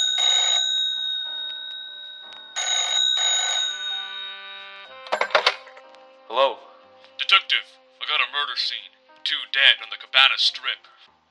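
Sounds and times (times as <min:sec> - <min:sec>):
telephone bell ringing: 0:00.0 - 0:05.8
speech: 0:06.4 - 0:06.6, 0:08.4 - 0:11.2.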